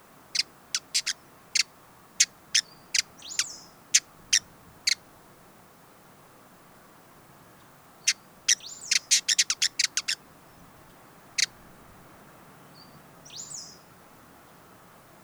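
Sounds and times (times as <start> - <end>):
Hooded visorbearer calling with crisp high ticks: 0.4 - 5.0, 7.6 - 10.2.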